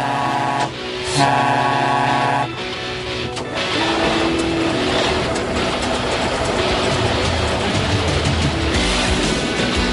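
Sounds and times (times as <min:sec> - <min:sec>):
bright sustained synth chords of a children's science TV show theme: 0:00.0 - 0:09.9
busy clattering train-like rhythmic texture: 0:00.0 - 0:09.9.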